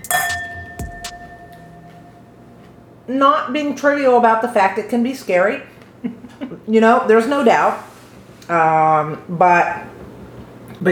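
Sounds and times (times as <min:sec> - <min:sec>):
glasses clinking in a toast: 0:00.0 - 0:02.9
speech: 0:03.1 - 0:07.9, 0:08.5 - 0:10.0.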